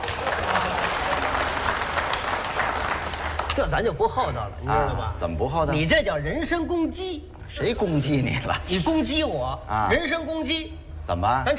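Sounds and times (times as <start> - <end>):
crowd applause: 0.0 - 3.6
speech: 3.6 - 11.5.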